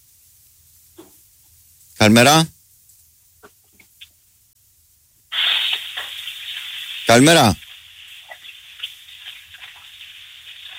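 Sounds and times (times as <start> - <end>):
speech: 2.0 - 2.6, 7.1 - 7.6
water running from a bathroom tap: 5.3 - 10.7.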